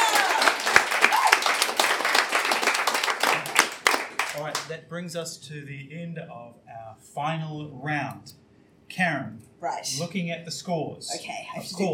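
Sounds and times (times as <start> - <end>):
room full of people clapping: 0.0 - 4.8
speech: 4.7 - 11.9.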